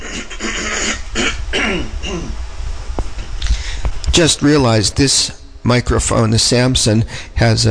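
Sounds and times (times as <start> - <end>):
person clearing throat at a microphone: 0.0 - 2.4
speech: 4.2 - 7.6.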